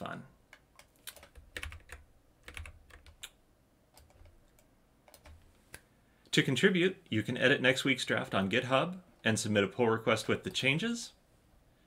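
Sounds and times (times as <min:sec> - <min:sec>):
typing on a computer keyboard: 0:00.5 - 0:05.4
speech: 0:06.4 - 0:11.2.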